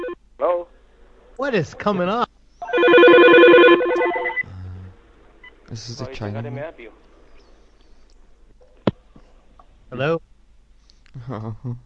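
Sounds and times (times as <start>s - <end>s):
speech: 1.4s - 2.3s, 5.7s - 7.1s, 9.9s - 10.2s, 11.2s - 11.8s
elevator phone ringing with a warbling electronic tone: 2.6s - 4.5s
steady tone: 2.6s - 5.6s.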